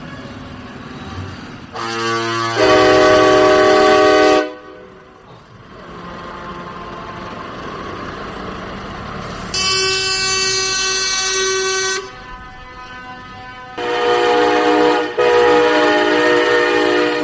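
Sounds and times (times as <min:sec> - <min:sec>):
truck engines rumbling: 0:00.0 - 0:17.2
trucker convoy air horns blaring in the Netherlands: 0:01.7 - 0:05.0, 0:09.5 - 0:17.2.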